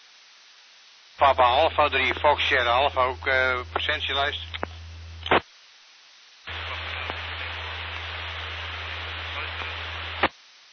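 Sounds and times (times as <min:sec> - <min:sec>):
loud hissing static: 0:00.0 - 0:10.7
speech: 0:01.2 - 0:04.6
low hum: 0:01.2 - 0:05.4, 0:06.5 - 0:10.2
very faint amateur radio transmission: 0:01.2 - 0:10.7.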